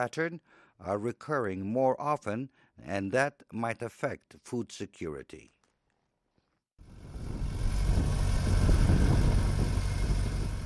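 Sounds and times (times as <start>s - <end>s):
speech: 0.0s - 5.6s
tractor engine tilling farmland north of Harare: 7.0s - 10.6s.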